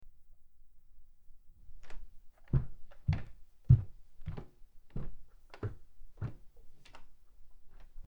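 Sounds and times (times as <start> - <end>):
footsteps on wood: 2.6 - 7.0.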